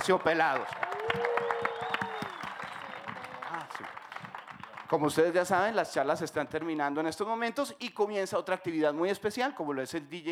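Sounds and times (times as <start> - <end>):
speech: 0.0 - 1.4, 3.7 - 4.0, 4.9 - 10.3
audience applause at a rock festival talk: 0.0 - 6.8.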